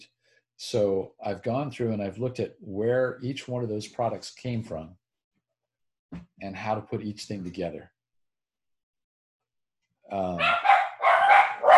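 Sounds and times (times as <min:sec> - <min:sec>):
speech: 0:00.6 - 0:05.0, 0:06.1 - 0:08.0, 0:10.1 - 0:10.7
dogs barking: 0:10.4 - 0:11.7.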